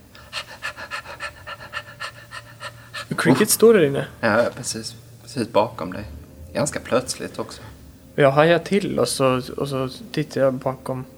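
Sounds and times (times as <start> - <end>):
dog panting: 0.0 - 4.0
speech: 3.2 - 11.1.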